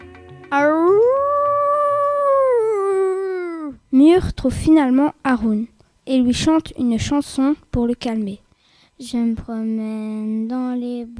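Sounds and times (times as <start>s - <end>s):
wolf howling at the edge of a wood: 0.0s - 3.6s
speech: 0.5s - 1.0s, 4.0s - 8.4s, 9.0s - 11.1s.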